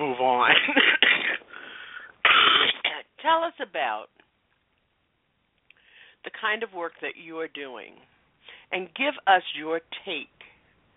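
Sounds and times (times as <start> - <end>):
speech: 0.2 - 1.1, 3.3 - 4.2, 6.3 - 8.1, 8.7 - 10.5
harsh coughing and throat clearing: 0.5 - 1.6, 2.2 - 3.0.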